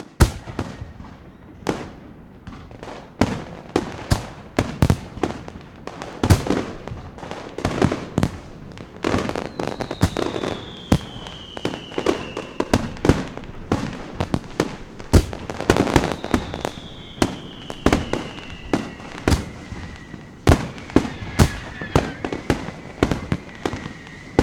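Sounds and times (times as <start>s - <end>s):
fireworks: 0.0s - 24.4s.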